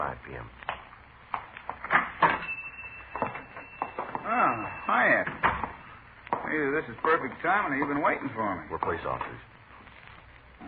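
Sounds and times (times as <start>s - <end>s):
speech: 0.1s - 0.6s, 6.6s - 9.5s
shop door being unlocked and opened: 1.8s - 5.8s.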